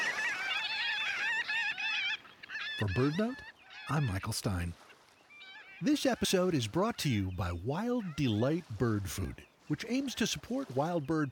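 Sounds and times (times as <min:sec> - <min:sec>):
large flock of marbled godwits honking on a mudflat: 0:00.0 - 0:06.5
speech: 0:02.8 - 0:04.8, 0:05.8 - 0:11.2.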